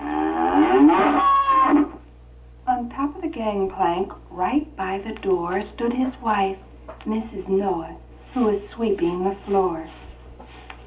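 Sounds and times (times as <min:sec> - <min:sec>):
cow mooing: 0:00.0 - 0:02.0
speech: 0:03.4 - 0:10.0.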